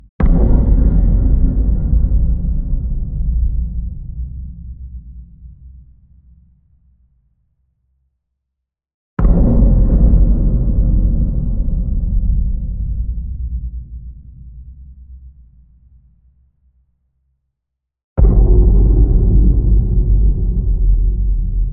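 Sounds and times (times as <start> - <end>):
fat drum booms: 0.2 - 4.6, 9.2 - 13.3, 18.2 - 21.7.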